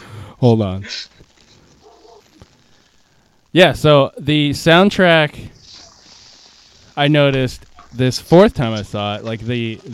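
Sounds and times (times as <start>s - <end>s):
speech: 0.4s - 1.2s, 3.6s - 5.6s, 7.0s - 9.9s
faint dog bark: 1.8s - 2.3s
low steady room hiss: 2.6s - 8.6s.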